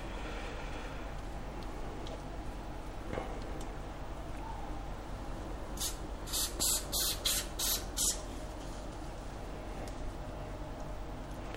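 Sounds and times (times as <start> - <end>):
quiet room hum: 0.0 - 11.5
spray bottle spritzing liquid onto poultry: 5.8 - 8.2.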